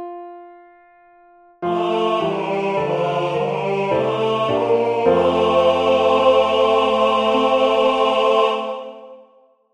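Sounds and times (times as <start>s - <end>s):
tenor voices: 1.7s - 9.2s.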